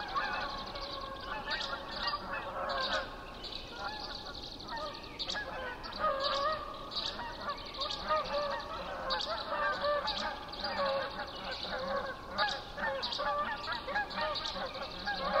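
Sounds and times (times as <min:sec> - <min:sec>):
Canada geese giving nasal honks: 0:00.0 - 0:15.3.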